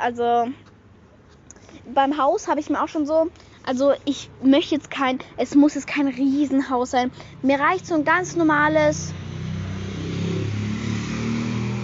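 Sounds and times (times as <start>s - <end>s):
speech: 0.0s - 0.7s, 1.8s - 9.2s
loud motorcycle engine revving and roaring by: 8.2s - 11.8s.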